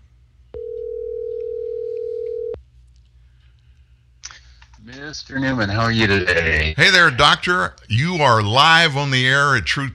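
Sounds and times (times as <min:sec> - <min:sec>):
low hum: 0:00.0 - 0:09.9
telephone dialing tone: 0:00.6 - 0:02.6
speech: 0:05.1 - 0:09.9.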